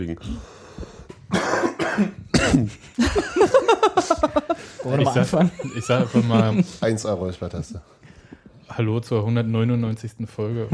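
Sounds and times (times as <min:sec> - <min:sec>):
speech: 0:00.0 - 0:00.9, 0:01.9 - 0:08.1, 0:08.8 - 0:10.7
person having a harsh coughing fit: 0:01.3 - 0:02.9
laughter: 0:02.8 - 0:07.2.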